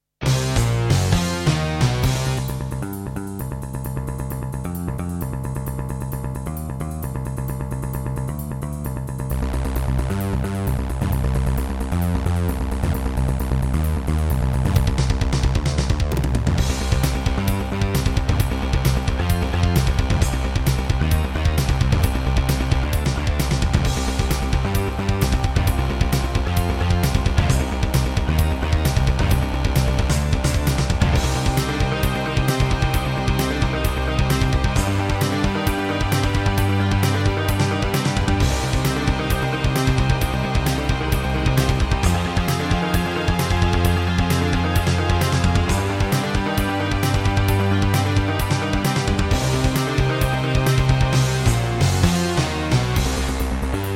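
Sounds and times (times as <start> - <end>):
Alesis NanoSynth synthesizer: 0.2 - 53.9.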